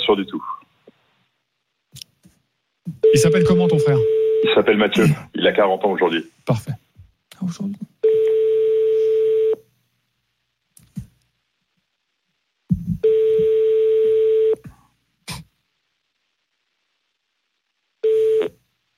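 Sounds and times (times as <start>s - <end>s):
speech: 0.1s - 0.6s, 3.1s - 6.7s, 7.4s - 7.8s
telephone call ringing tones: 3.0s - 4.6s, 8.0s - 9.6s, 13.0s - 14.6s, 18.0s - 18.6s.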